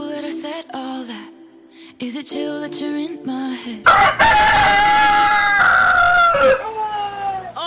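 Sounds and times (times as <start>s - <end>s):
speech: 2.0s - 5.2s
rooster crowing: 3.9s - 7.5s.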